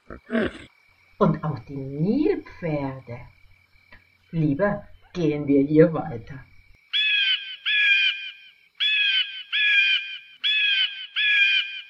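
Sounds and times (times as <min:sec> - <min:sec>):
speech: 0:00.1 - 0:03.4, 0:04.3 - 0:06.5
eagle crying: 0:07.0 - 0:11.8.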